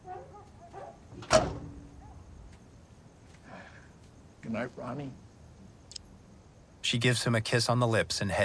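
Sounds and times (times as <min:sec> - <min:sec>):
truck passenger-side door swung open: 0:01.1 - 0:01.8
speech: 0:04.5 - 0:05.2, 0:06.9 - 0:08.4.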